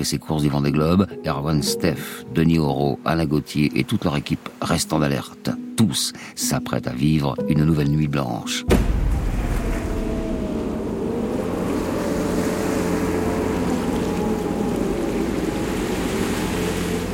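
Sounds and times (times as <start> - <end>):
speech: 0.0 - 9.0
waves and spray rushing past a racing sailboat in the southern Indian Ocean: 8.7 - 17.1
very strong wind rumbling over the southern Indian Ocean: 8.9 - 17.1.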